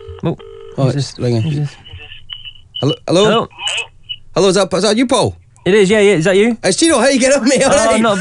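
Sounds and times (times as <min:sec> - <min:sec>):
electronic phone ring tone: 0:00.0 - 0:02.0
speech: 0:00.2 - 0:01.9, 0:02.8 - 0:08.2.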